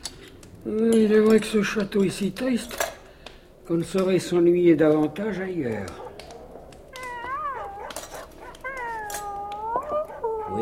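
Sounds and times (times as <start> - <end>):
speech: 0.6 - 2.9, 3.7 - 6.0
dog howling with long wavering cries: 4.9 - 10.5.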